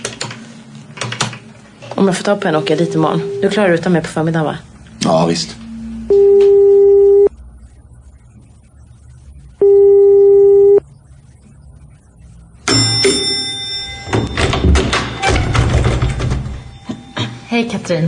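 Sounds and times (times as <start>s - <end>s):
speech: 2.0s - 6.2s, 17.9s - 18.0s
phone line clicking open: 6.1s - 7.3s, 9.6s - 10.8s, 12.6s - 17.1s
telephone ringback tone while calling: 6.1s - 7.3s, 9.6s - 10.8s, 12.6s - 17.4s
clattering and rustling: 14.1s - 16.8s.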